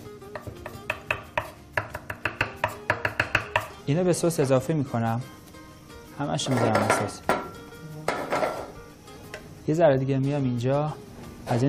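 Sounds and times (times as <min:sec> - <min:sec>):
knife chopping fresh basil on a board: 0:00.3 - 0:03.8
speech: 0:03.9 - 0:05.4, 0:06.2 - 0:07.3, 0:09.7 - 0:11.6.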